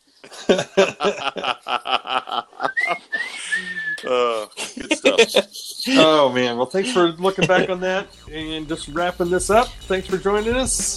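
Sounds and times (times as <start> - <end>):
laughter: 0.2 - 10.8
person whistling a quick solo melody: 2.6 - 4.2, 8.3 - 10.9
speech: 5.2 - 10.9.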